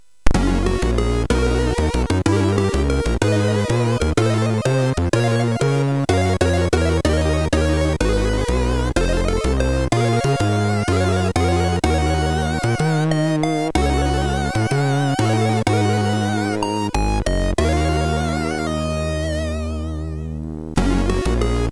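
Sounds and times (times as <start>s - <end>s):
jazz music on a MOS6581R3 chip: 0.4s - 21.6s.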